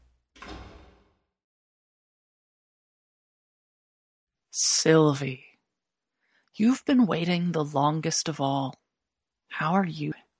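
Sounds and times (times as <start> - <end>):
heavy door lock clunking: 0.4 - 1.1
heavy door slamming shut: 0.4 - 1.2
speech: 4.5 - 5.5, 6.6 - 8.8, 9.5 - 10.2.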